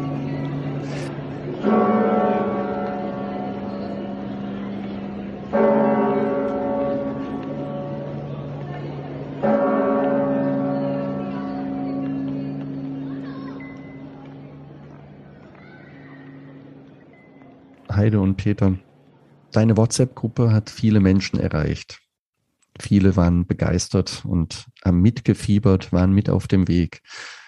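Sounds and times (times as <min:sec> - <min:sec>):
deep cathedral bells tolling: 0:00.0 - 0:15.0
faint murmur: 0:00.0 - 0:20.5
speech: 0:18.0 - 0:18.9, 0:19.5 - 0:22.0, 0:22.8 - 0:27.4.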